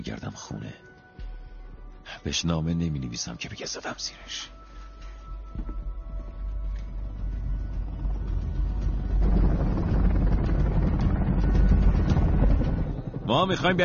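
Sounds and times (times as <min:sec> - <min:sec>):
speech: 0:00.0 - 0:00.9, 0:02.2 - 0:04.6, 0:13.3 - 0:13.8
helicopter engine and rotor rumble climbing toward the clouds: 0:07.1 - 0:13.8.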